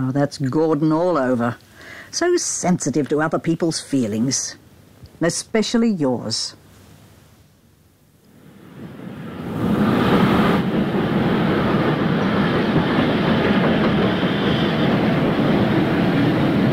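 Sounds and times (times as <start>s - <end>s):
speech: 0.0s - 4.6s, 5.2s - 6.6s
train arriving at a station platform: 8.4s - 16.7s.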